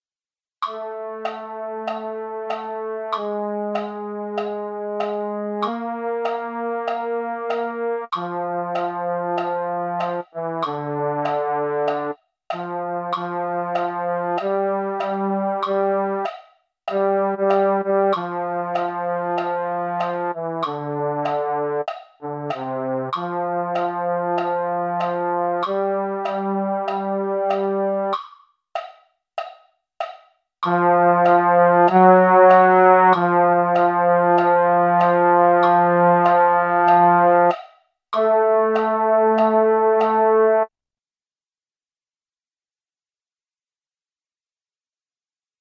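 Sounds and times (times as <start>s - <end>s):
MIDI baritone euphonium: 0.7s - 16.2s, 17.0s - 28.1s, 30.7s - 37.5s, 38.2s - 40.7s.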